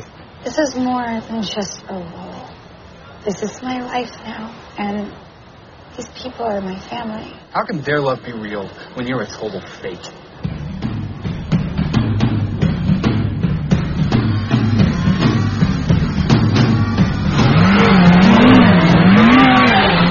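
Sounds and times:
speech: 0.4s - 2.2s, 3.2s - 5.3s, 6.0s - 10.2s
car engine revving and accelerating during a chase: 10.4s - 20.1s
tires squealing: 14.1s - 20.1s.

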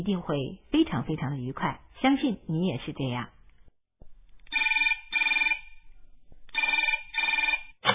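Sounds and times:
speech: 0.0s - 3.4s
telephone bell ringing: 4.5s - 5.8s, 6.6s - 7.8s.

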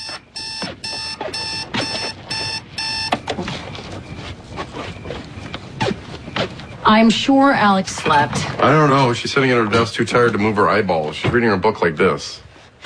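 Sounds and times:
alarm clock ringing with a shrill electronic tone: 0.0s - 3.2s
rustling: 0.6s - 10.4s
speech: 6.9s - 12.4s.

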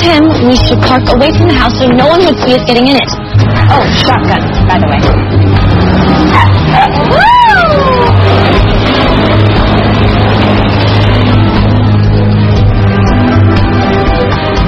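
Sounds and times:
road noise: 0.0s - 14.6s
speech: 0.4s - 8.5s
car engine roaring as it speeds off: 3.2s - 14.6s
car tire squeal: 5.6s - 12.4s.

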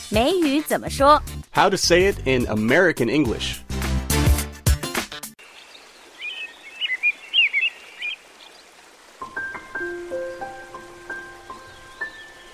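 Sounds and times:
speech: 0.1s - 3.6s
birds chirping and singing: 5.4s - 8.7s, 9.6s - 12.5s.

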